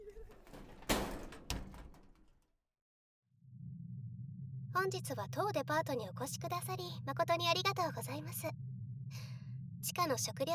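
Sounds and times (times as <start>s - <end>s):
elevator door sliding shut with a low mechanical rumble: 0.2s - 2.2s
steady low hum: 3.5s - 10.5s
speech: 4.8s - 8.6s, 10.0s - 10.5s.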